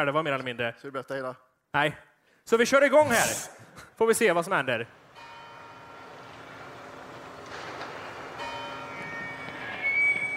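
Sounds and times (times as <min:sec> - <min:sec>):
speech: 0:00.0 - 0:05.0
church bells ringing: 0:05.0 - 0:10.3.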